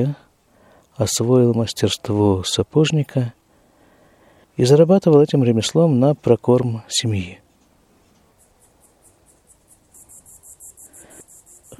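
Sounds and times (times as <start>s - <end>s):
speech: 0.0s - 0.2s, 1.0s - 3.4s, 4.6s - 7.4s
crickets chirping outdoors: 8.1s - 11.7s.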